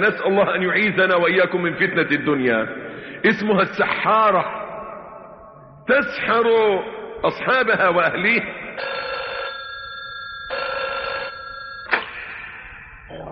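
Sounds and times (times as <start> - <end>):
speech: 0.0 - 4.6, 5.9 - 9.0
telephone ringing: 8.8 - 12.2.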